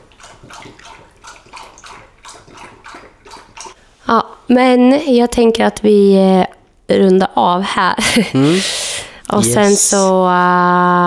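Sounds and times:
pet lapping drinking water: 0.0 - 3.8
speech: 0.5 - 1.2, 4.1 - 11.0
laughter: 8.0 - 8.6.

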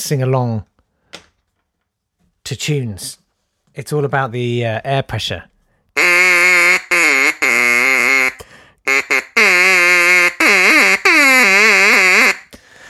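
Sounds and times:
speech: 0.1 - 0.7, 2.5 - 3.2, 3.8 - 5.5
duck call blown in buzzy quacking bursts: 6.0 - 12.5.

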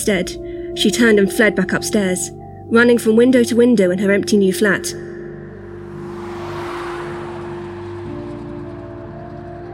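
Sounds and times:
speech: 0.0 - 5.1
continuous engine hum of evening traffic on a street in drizzle: 5.0 - 9.7
car whooshing past on a street in drizzle: 5.4 - 9.7.

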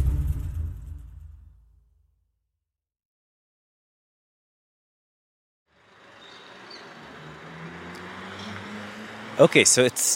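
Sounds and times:
deep rumble: 0.0 - 1.8
morning street traffic in the German Colony of Jerusalem: 5.7 - 10.1
speech: 9.4 - 10.1.

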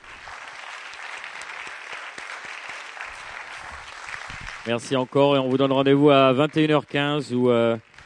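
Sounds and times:
audience applause: 0.0 - 8.0
speech: 4.6 - 7.9.

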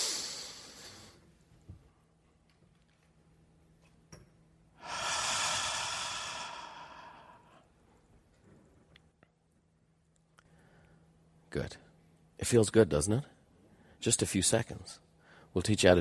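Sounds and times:
guided big long slow breath in: 0.0 - 1.2, 4.8 - 7.7
speech: 11.6 - 13.4, 14.0 - 15.9.

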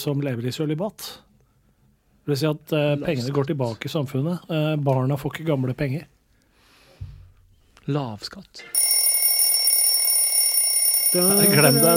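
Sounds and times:
speech: 0.0 - 1.3, 2.3 - 6.1, 7.9 - 8.8, 11.1 - 11.9
phone timer alarm ringing with a high electronic tone: 8.8 - 11.9.

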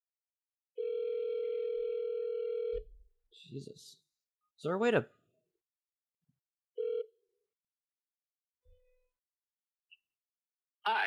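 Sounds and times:
telephone ringing: 0.8 - 2.8, 6.8 - 7.2
speech: 3.3 - 4.0, 4.6 - 5.2, 10.9 - 11.0.

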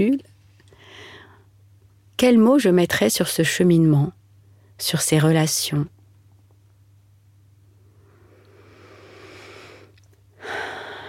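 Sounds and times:
speech: 0.0 - 0.3, 2.2 - 4.2, 4.8 - 6.0
person inhaling deeply: 7.9 - 11.0.

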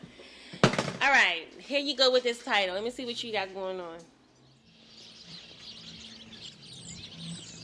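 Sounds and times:
speech: 1.1 - 4.2
low hum of street traffic: 1.3 - 7.6
chorus of many small birds chirping in a sidewalk tree: 4.1 - 7.6.

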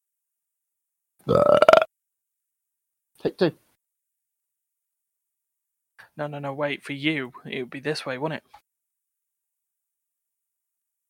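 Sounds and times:
loud croaky burp: 1.2 - 1.9
speech: 1.3 - 1.7, 3.4 - 3.6, 6.2 - 8.6.

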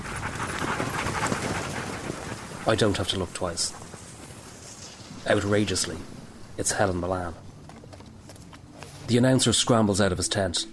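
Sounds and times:
team of sled dogs panting heavily: 0.0 - 6.8
speech: 2.6 - 3.8, 5.2 - 7.4, 9.1 - 10.7.

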